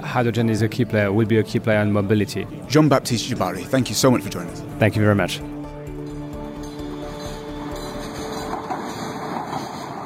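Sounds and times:
speech: 0.1 - 5.6
train passing on rails: 7.2 - 10.0.

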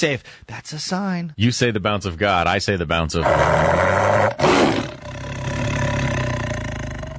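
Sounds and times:
speech: 0.0 - 5.0
tiger roar sound effect trailing into a deep rumbling growl: 3.2 - 7.1.

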